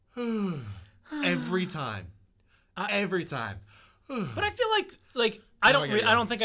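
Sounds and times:
person imitating a breathy groan-sigh after a yawn: 0.2s - 1.9s, 4.1s - 4.4s
speech: 0.2s - 2.2s, 2.8s - 6.4s.

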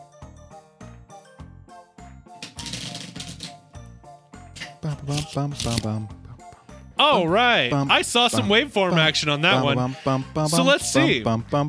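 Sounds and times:
deck of cards being shuffled: 2.4s - 3.8s, 4.6s - 6.1s
speech: 4.8s - 6.2s, 7.0s - 11.6s.

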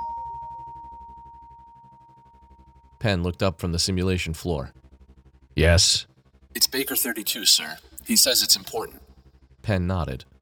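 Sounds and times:
electronic door chime with pulsing warble in an oversea chamber: 0.0s - 2.2s
speech: 3.0s - 4.8s, 5.6s - 10.3s.

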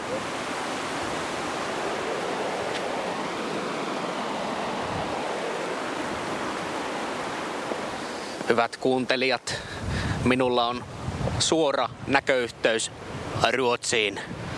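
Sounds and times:
river rapids roaring: 0.0s - 9.5s
speech: 8.5s - 14.4s.

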